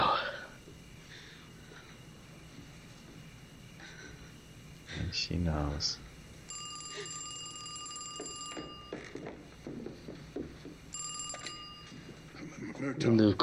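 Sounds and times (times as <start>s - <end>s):
speech: 5.1s - 6.0s, 12.8s - 13.4s
telephone ringing: 6.4s - 12.5s.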